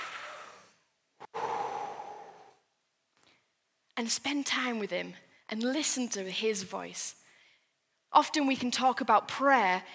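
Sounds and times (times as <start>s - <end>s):
deep breath with long airy inhale and steady breathy exhale: 0.0s - 3.6s
speech: 4.0s - 7.2s, 8.1s - 9.9s.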